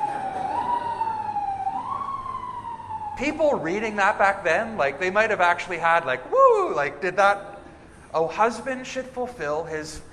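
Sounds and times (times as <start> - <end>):
siren wailing: 0.0 - 4.8
low rumble of traffic: 0.0 - 10.1
speech: 3.2 - 7.5, 8.1 - 10.1.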